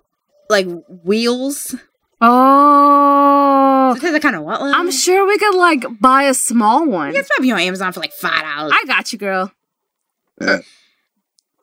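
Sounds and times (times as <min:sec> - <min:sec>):
speech: 0:00.5 - 0:03.0, 0:03.9 - 0:09.6, 0:10.4 - 0:10.8
short little burp: 0:10.4 - 0:10.9.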